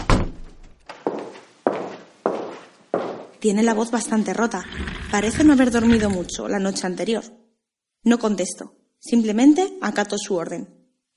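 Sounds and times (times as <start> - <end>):
door thudding shut with a low heavy knock: 0.0 - 0.6
footsteps walking away across a hard floor: 0.6 - 3.4
speech: 3.4 - 7.4, 8.0 - 11.1.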